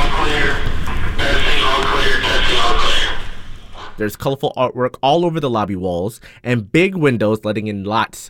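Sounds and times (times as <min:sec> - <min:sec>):
loud tinny voice over an intercom speaker at an unfinished hospital outpatient center: 0:00.0 - 0:04.0
speech: 0:04.0 - 0:08.2.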